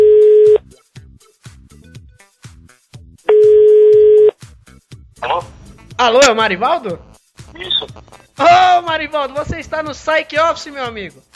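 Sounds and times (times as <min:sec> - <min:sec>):
telephone line tone as a call is placed: 0:00.0 - 0:00.6, 0:03.3 - 0:04.3
speech: 0:05.3 - 0:07.1, 0:08.4 - 0:11.3.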